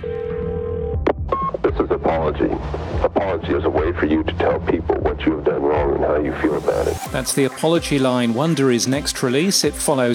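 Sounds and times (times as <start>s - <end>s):
steady telephone dial tone: 0.0s - 1.0s
speech: 1.7s - 10.1s.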